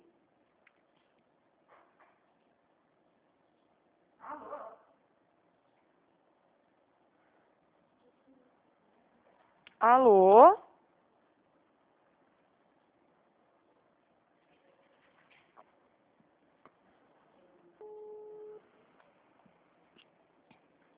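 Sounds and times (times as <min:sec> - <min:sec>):
speech: 0:09.8 - 0:10.6
telephone tone after a dropped call: 0:17.8 - 0:18.7.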